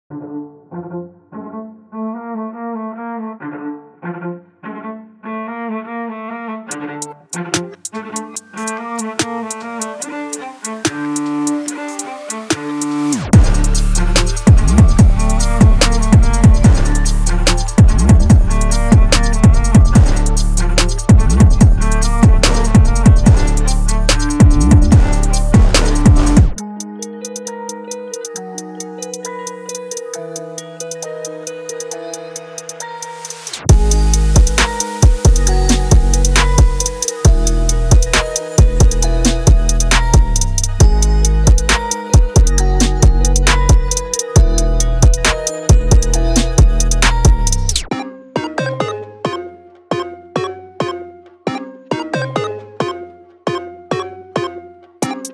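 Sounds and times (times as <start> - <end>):
trap beat samples: 6.7 - 47.9, 55.0 - 55.3.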